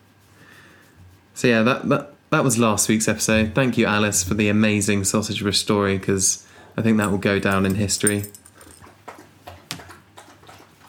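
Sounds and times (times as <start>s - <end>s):
speech: 1.4s - 8.4s
dog lapping water from its bowl: 8.6s - 10.8s.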